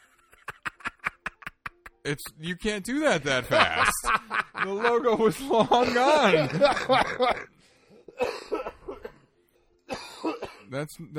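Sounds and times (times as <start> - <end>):
laughter: 0.0 - 2.0, 3.4 - 7.5
speech: 2.0 - 7.5, 10.7 - 11.1
harsh coughing fit: 5.7 - 7.5, 8.1 - 9.3, 9.9 - 10.7.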